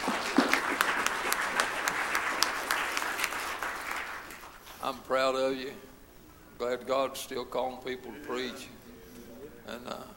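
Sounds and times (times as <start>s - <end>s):
crowd clapping: 0.0s - 4.6s
speech: 5.0s - 5.9s, 6.6s - 8.8s, 9.7s - 10.1s.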